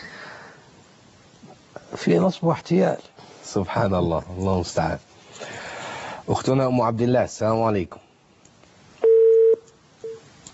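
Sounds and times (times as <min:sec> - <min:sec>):
speech: 0:01.9 - 0:05.6, 0:06.3 - 0:08.0
telephone beeps of a disconnected call: 0:09.0 - 0:10.2.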